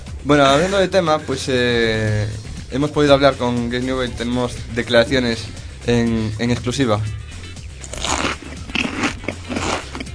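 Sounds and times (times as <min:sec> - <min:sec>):
speech: 0:00.2 - 0:07.2
crunchy chewing: 0:07.4 - 0:10.1.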